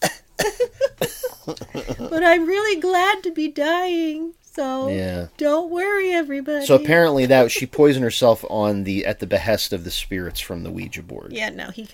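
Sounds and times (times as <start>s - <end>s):
person imitating a woman's fit of coughing: 0.0s - 2.2s
laughter: 0.6s - 2.2s, 7.1s - 8.1s
speech: 1.5s - 11.9s.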